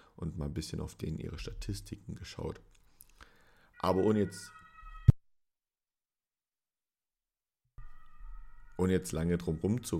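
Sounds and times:
speech: 0.2s - 2.8s, 3.8s - 4.6s, 8.8s - 9.9s
faint ambulance siren wailing: 3.7s - 5.2s, 7.8s - 9.9s.

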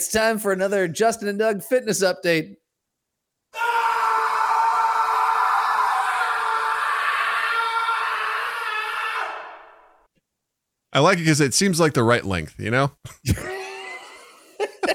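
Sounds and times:
speech: 0.0s - 2.6s, 10.9s - 13.6s
long loud strained human scream: 3.5s - 10.0s, 13.4s - 14.3s
laughter: 13.1s - 14.9s.

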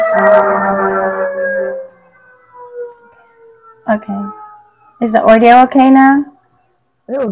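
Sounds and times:
ambulance siren wailing as it passes: 0.0s - 7.0s
speech: 3.9s - 4.4s, 5.0s - 6.3s, 7.1s - 7.3s.

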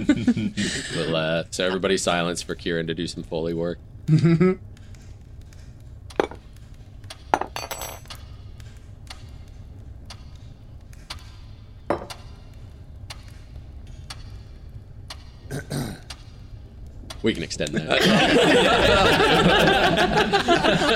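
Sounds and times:
laughter: 0.0s - 1.3s, 17.6s - 20.9s
speech: 0.0s - 4.7s, 17.2s - 20.9s
low steady room hum: 0.0s - 20.9s
forks clinking on ceramic plates: 7.4s - 8.2s.

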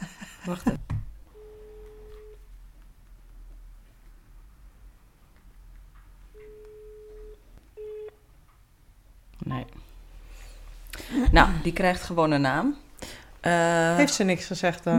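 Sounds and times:
laughter: 0.0s - 0.8s
speech: 0.4s - 0.9s, 11.4s - 14.9s
phone ringback tone while a call is placed: 1.3s - 2.4s, 6.3s - 8.2s.

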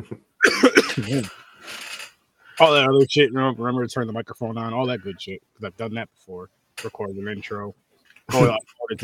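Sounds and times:
speech: 0.0s - 1.4s, 2.6s - 9.0s
man coughing: 0.4s - 1.4s.

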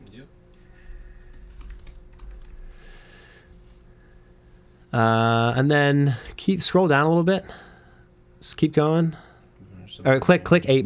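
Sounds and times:
rapid typing on a computer keyboard as a search is entered: 1.2s - 2.6s
speech: 4.9s - 7.7s, 8.4s - 9.3s, 9.9s - 10.8s.

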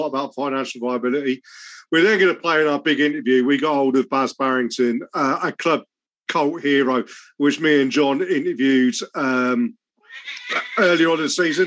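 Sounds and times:
speech: 0.0s - 11.6s
female cat meowing: 10.0s - 11.6s.

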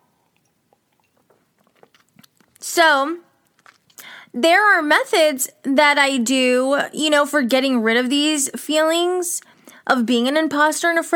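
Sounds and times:
sipping a drink: 0.1s - 2.7s, 3.4s - 4.3s
faint gulp: 0.2s - 2.6s
speech: 2.7s - 3.3s, 4.3s - 11.1s.

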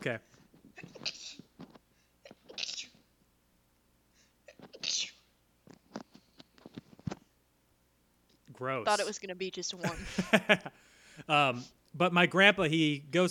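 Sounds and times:
speech: 0.0s - 0.9s, 8.6s - 13.2s
person sneezing: 0.8s - 1.5s, 2.3s - 3.0s, 4.5s - 5.3s
laughter: 9.8s - 10.8s.

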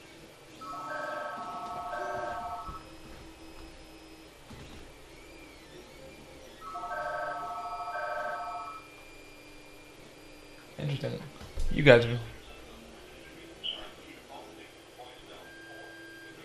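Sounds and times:
mobile phone ringtone for an incoming call: 0.6s - 2.8s, 6.6s - 8.9s
speech: 10.9s - 12.3s.

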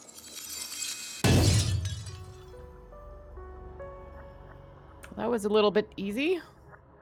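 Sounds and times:
crystal cracking and shattering: 0.0s - 2.6s
speech: 5.2s - 6.6s.

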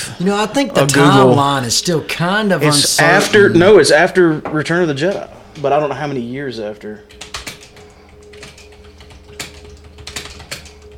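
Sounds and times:
speech: 0.2s - 7.3s
clacky computer keyboard typing: 7.1s - 10.9s.

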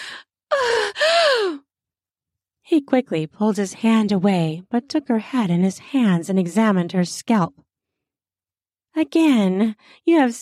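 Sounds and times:
woman's pleasing gasp: 0.0s - 1.6s
speech: 2.7s - 7.6s, 9.0s - 10.4s.

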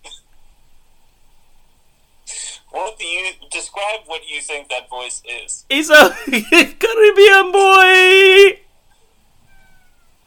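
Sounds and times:
speech: 3.2s - 8.6s
cat meowing: 9.4s - 10.2s.

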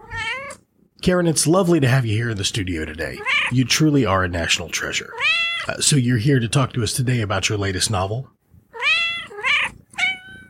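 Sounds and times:
house cat meowing: 0.0s - 0.6s, 3.2s - 3.6s, 8.7s - 10.4s
speech: 1.0s - 8.4s.

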